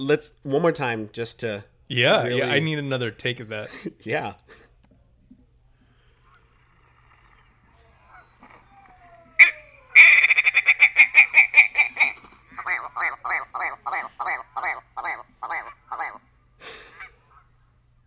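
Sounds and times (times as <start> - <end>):
speech: 0.0 - 4.6
strange bird call of rapid harsh honking notes: 7.2 - 17.9.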